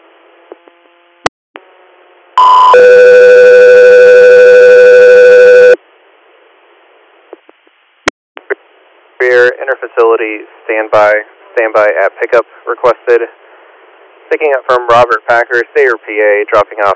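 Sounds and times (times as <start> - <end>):
two-tone radio paging alert summoning an air medical crew: 2.4 - 5.8
faint radio hiss: 5.8 - 16.9
speech: 10.0 - 13.4, 14.3 - 16.9.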